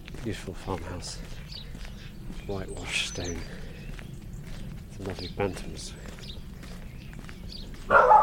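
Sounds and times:
speech: 0.2s - 1.7s, 2.3s - 3.6s, 5.0s - 6.2s
faint bird chirp: 1.2s - 8.2s
dog barking: 7.9s - 8.2s.

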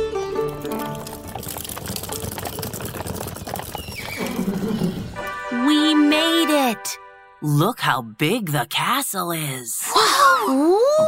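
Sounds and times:
soft music: 0.0s - 1.2s, 5.2s - 8.6s
horse-drawn wagon wheels rattling: 0.3s - 5.2s
horse hooves clip-clopping pulling a wagon: 0.3s - 5.4s
speech: 6.7s - 11.0s.

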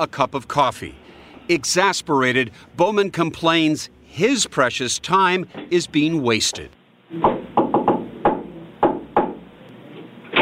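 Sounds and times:
speech: 0.0s - 7.4s
sharp hollow knocks on a door: 7.2s - 9.5s.

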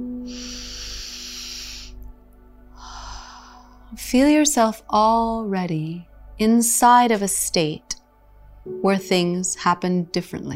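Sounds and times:
steady sustained musical drone: 0.0s - 10.5s
deep breath drawn in during a calming visualization exercise: 0.2s - 2.0s, 2.8s - 3.9s
speech: 4.0s - 8.0s, 8.7s - 10.5s.

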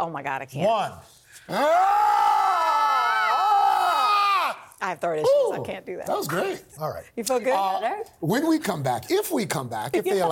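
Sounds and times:
speech: 0.0s - 2.3s, 4.8s - 10.3s
people screaming together in a studio: 1.5s - 4.7s.

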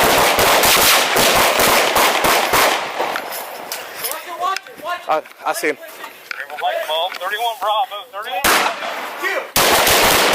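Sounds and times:
gunfire during a firefight: 0.0s - 3.4s, 8.4s - 10.3s
speech: 5.1s - 6.0s, 6.6s - 9.5s.

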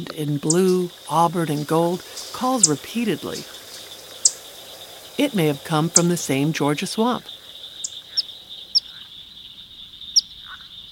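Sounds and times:
speech: 0.0s - 3.6s, 5.2s - 7.4s
Eastern Phoebe sharp high chip calls from a dead branch over water: 0.0s - 10.7s
steady high drone in a cypress swamp in South Florida: 0.5s - 8.8s.

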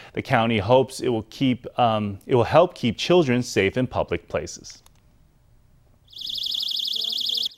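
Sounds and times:
speech: 0.2s - 4.8s
personal safety alarm blaring shrill warbling electronic tone: 6.1s - 7.5s.

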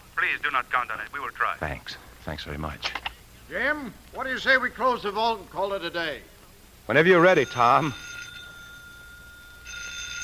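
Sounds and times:
speech: 0.3s - 6.3s, 6.9s - 8.1s
telephone ringing with an electronic trill: 7.1s - 10.2s.

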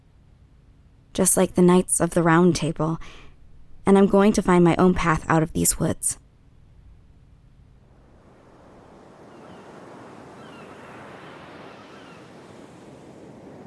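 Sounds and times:
speech: 1.2s - 3.2s, 3.9s - 6.2s
ocean waves breaking on shore: 7.9s - 13.6s.

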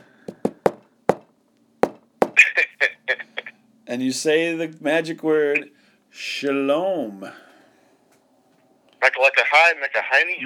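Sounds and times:
rhythmic secret knock on a hard surface: 0.0s - 2.4s
speech: 3.9s - 7.5s, 9.5s - 10.4s.

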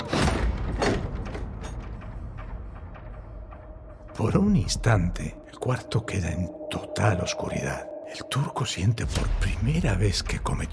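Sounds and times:
door of a room swinging shut with a dull thud: 0.0s - 2.6s
door latch rattling: 0.0s - 3.2s
speech: 4.2s - 10.7s.

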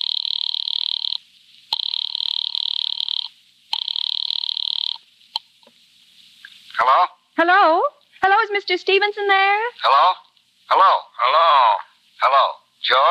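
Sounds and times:
telephone line ringing as a call is placed to an office: 0.0s - 1.2s, 1.8s - 5.0s
speech: 6.8s - 13.0s.

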